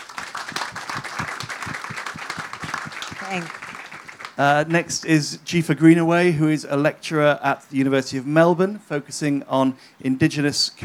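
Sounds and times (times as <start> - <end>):
audience applauding a speaker: 0.0 - 4.7
speech: 3.3 - 3.6, 4.4 - 10.8.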